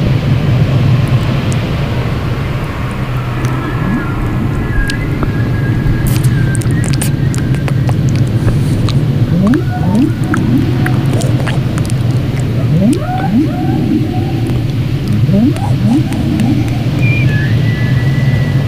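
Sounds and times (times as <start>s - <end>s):
dense underwater rumble: 0.1s - 18.6s
whale calls underwater: 3.1s - 18.6s
faint higher tones and clicks: 3.3s - 17.4s.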